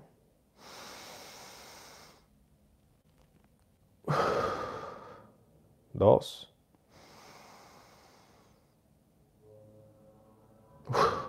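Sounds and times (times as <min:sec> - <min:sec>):
deep exhalation during a breathing exercise: 0:00.5 - 0:02.3, 0:04.1 - 0:05.4, 0:06.9 - 0:08.8
speech: 0:06.0 - 0:06.5.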